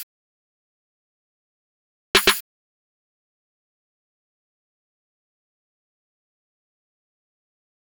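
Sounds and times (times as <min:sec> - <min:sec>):
snare roll: 0:02.2 - 0:02.4.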